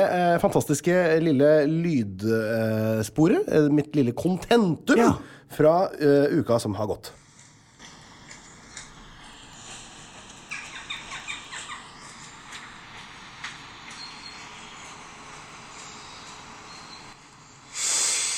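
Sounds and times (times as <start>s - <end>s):
speech: 0.0s - 7.2s
birds calling in a forest: 10.4s - 15.1s
crow squawking in a forest: 10.5s - 11.9s.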